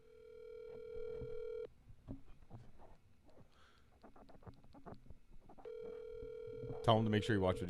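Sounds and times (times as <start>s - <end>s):
phone ringback tone over speakerphone: 0.0s - 1.7s, 5.7s - 7.6s
speech: 6.9s - 7.6s.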